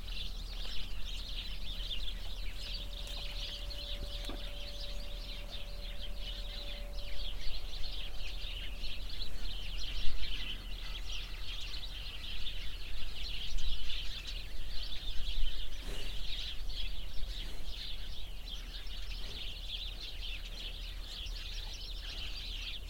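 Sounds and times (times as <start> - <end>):
many sparrows chirping in a bush beside a cow pasture: 0.0 - 22.8.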